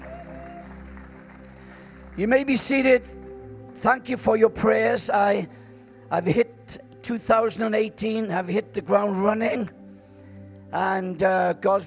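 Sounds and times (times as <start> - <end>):
audience applause: 0.0 - 2.5
speech: 2.2 - 3.2, 3.8 - 9.8, 10.7 - 11.8.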